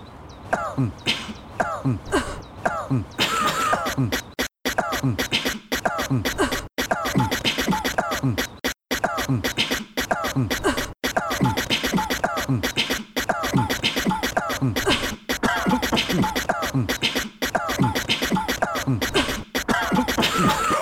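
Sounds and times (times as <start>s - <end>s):
beatbox: 0.5s - 20.7s.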